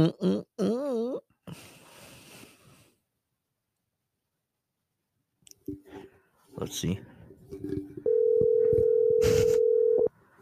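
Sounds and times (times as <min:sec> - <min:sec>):
speech: 0:00.0 - 0:00.5, 0:06.6 - 0:07.9
outgoing phone call ringing tone: 0:08.1 - 0:10.1.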